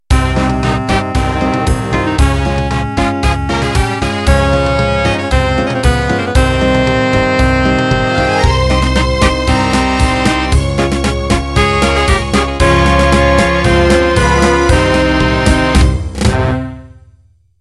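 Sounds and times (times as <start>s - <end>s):
pasodoble music intro: 0.1s - 17.2s.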